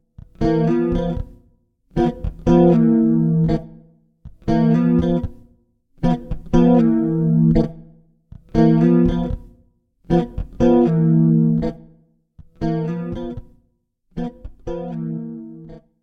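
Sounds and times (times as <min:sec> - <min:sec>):
electric guitar chords in stereo: 0:00.3 - 0:01.4, 0:02.0 - 0:05.4, 0:06.0 - 0:07.9, 0:08.5 - 0:09.5, 0:10.1 - 0:11.9, 0:12.6 - 0:13.4, 0:14.2 - 0:15.8.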